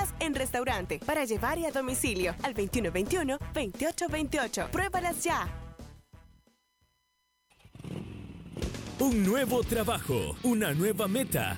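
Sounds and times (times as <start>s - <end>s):
speech: 0.2s - 5.6s, 9.0s - 11.5s
150cc motorcycle engine starting and revving: 7.5s - 10.0s.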